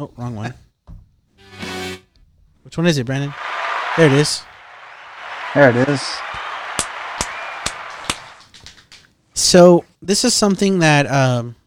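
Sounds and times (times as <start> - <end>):
speech: 0.0 - 0.6, 2.6 - 4.5, 5.5 - 6.4, 9.5 - 11.6
soundboard canned applause sound effect: 3.2 - 9.1.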